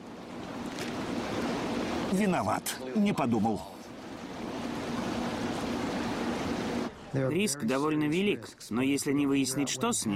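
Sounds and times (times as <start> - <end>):
water splashing and rushing: 0.0 - 7.8
speech: 2.1 - 3.8, 7.1 - 10.1.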